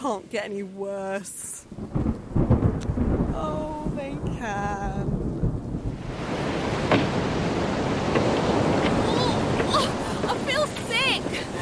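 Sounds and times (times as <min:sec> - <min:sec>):
speech: 0:00.0 - 0:02.2
wind buffeting: 0:01.6 - 0:11.5
large ocean waves crashing: 0:05.1 - 0:11.5
bright ocean water splashes: 0:06.0 - 0:11.5.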